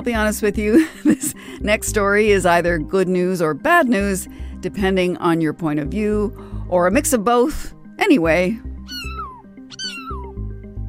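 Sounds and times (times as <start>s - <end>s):
speech: 0.0s - 8.7s
kitten meowing: 8.9s - 10.4s.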